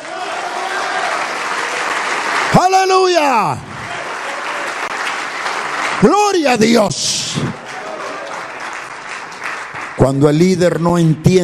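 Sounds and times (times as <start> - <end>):
church congregation applauding: 0.0 - 11.4
speech: 2.5 - 3.7, 6.0 - 7.6, 10.0 - 11.4.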